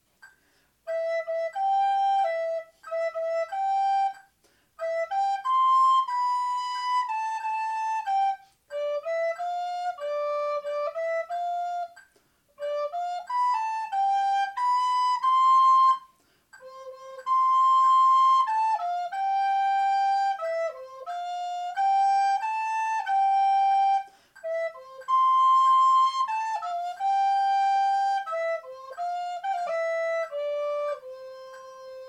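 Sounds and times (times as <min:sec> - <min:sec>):
lullaby played on flute: 0:00.0 - 0:32.0.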